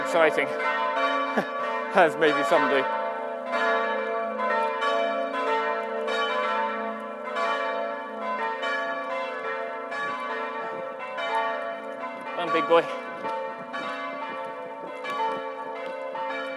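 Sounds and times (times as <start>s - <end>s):
church bells ringing in a continuous peal: 0.0s - 16.5s
speech: 0.1s - 3.0s, 12.6s - 13.0s.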